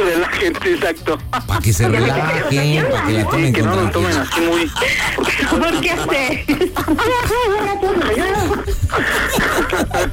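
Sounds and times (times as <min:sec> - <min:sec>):
laughter: 0:00.0 - 0:10.1
speech: 0:00.0 - 0:10.1
woman crying on a phone call: 0:01.4 - 0:10.1.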